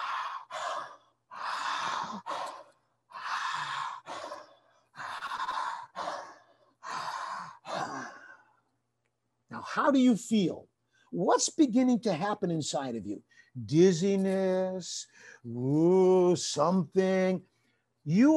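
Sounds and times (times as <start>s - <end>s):
deep forceful open-mouth breaths in a guided breathing exercise: 0.0s - 8.5s
speech: 9.7s - 18.3s.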